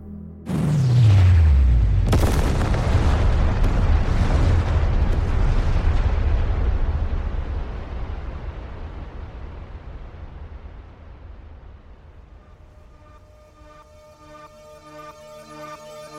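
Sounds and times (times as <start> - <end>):
thermonuclear warheads detonating in a huge explosion: 0.5 - 12.0.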